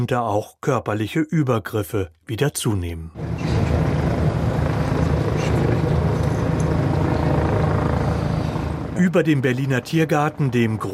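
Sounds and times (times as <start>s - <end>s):
speech: 0.0s - 3.6s, 9.0s - 10.9s
police helicopter rotor drone circling over a large park in central Berlin: 3.2s - 10.9s.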